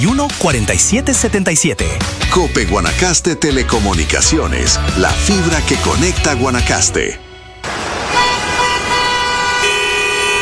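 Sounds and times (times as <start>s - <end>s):
speech: 0.0s - 7.2s
car horns honking in congested traffic: 7.0s - 10.4s.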